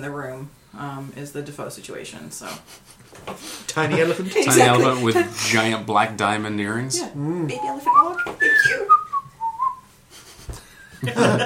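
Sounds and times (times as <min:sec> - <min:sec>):
speech: 0:00.0 - 0:09.0, 0:11.0 - 0:11.4
laughter: 0:02.7 - 0:05.7, 0:08.4 - 0:09.1, 0:10.2 - 0:11.4
person whistling: 0:07.5 - 0:09.9.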